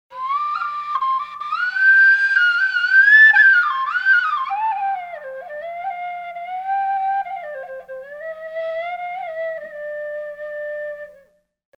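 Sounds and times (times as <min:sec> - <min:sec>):
suling bamboo flute playing: 0:00.1 - 0:11.4.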